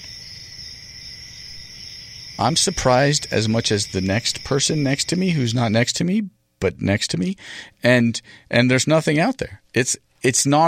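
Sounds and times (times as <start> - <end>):
chorus of crickets chirping: 0.0 - 6.2
speech: 2.4 - 10.6.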